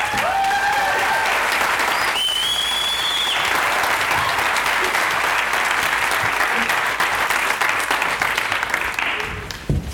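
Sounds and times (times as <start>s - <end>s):
large audience applause for keynote speakers: 0.0s - 9.7s
whistles from audience: 1.8s - 3.7s.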